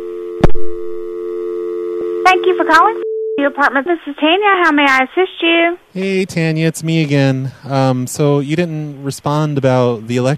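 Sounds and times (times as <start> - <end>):
telephone dial tone: 1.1 - 3.6
speech: 2.3 - 10.3.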